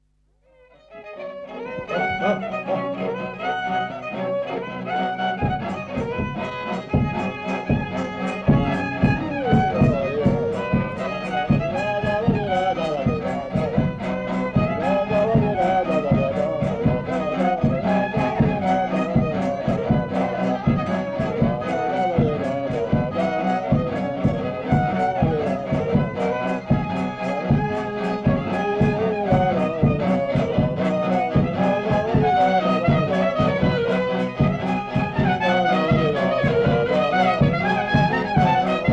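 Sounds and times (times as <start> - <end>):
oberek folk dance music: 0.7 - 38.9.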